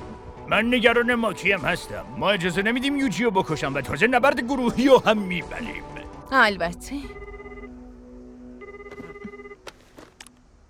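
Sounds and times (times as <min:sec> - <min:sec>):
speech: 0:00.5 - 0:07.2
telephone ringing in electronic tones: 0:07.1 - 0:07.8, 0:08.6 - 0:09.6.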